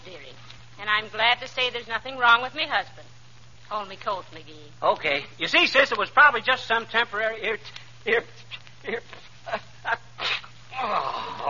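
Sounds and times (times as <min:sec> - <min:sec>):
speech: 0:00.8 - 0:03.1, 0:03.7 - 0:11.3
fit of sneezing: 0:10.2 - 0:11.4.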